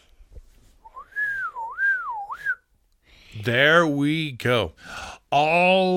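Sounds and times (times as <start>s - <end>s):
young boy whistling a wavering tone: 0.8s - 2.6s
speech: 3.4s - 5.9s.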